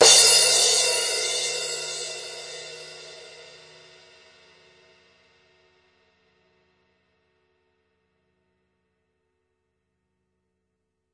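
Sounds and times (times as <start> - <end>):
17-inch crash cymbal hit: 0.0 - 4.8.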